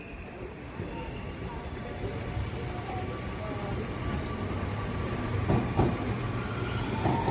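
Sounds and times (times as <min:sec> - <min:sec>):
hydrogen-powered passenger train running: 0:00.0 - 0:07.3
passenger train clank: 0:05.3 - 0:06.1.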